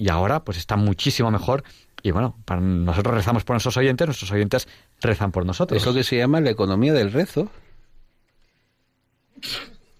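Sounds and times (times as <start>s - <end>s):
speech: 0.0s - 7.6s, 9.4s - 9.7s
sneeze: 9.4s - 9.9s.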